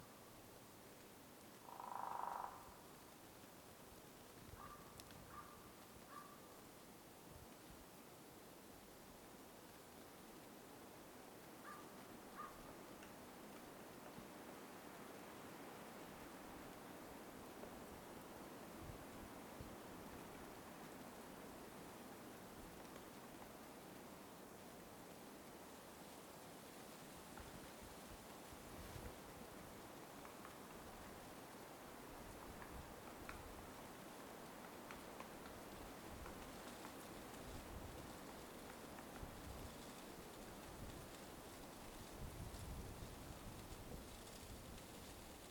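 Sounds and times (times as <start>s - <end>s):
light winter wind through bare trees in a forest: 0.0s - 45.4s.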